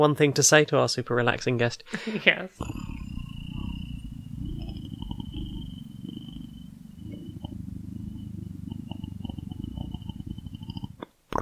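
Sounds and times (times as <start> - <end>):
speech: 0.0 - 2.8
person imitating a cat's purr: 2.6 - 11.4.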